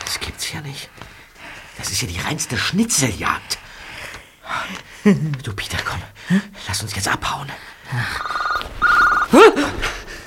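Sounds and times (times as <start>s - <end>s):
noise: 0.0s - 10.2s
speech: 0.5s - 1.0s, 1.8s - 3.6s, 4.7s - 8.8s
mobile phone ringing: 8.2s - 9.4s.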